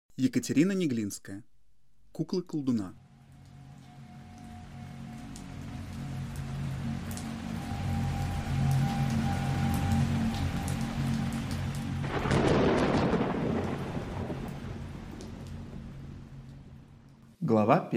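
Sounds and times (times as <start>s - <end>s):
speech: 0.2s - 1.5s, 2.2s - 3.0s, 17.5s - 17.9s
heavy spring rain downpour: 3.1s - 17.1s.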